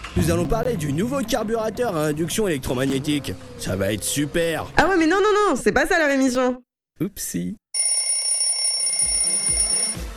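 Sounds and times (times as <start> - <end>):
speech: 0.2 - 7.6
shrill electronic alarm clock ringing: 7.8 - 10.0.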